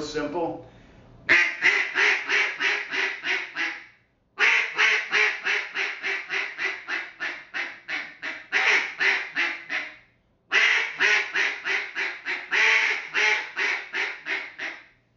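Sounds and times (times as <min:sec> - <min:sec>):
speech: 0:00.2 - 0:01.4
double reed duck call hen cadence quacking: 0:01.3 - 0:14.9.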